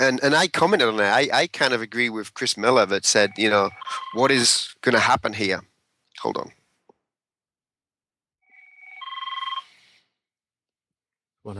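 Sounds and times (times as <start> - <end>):
speech: 0.1 - 6.6
new phone ringing with rapid electronic trill: 3.3 - 4.3, 8.6 - 9.7.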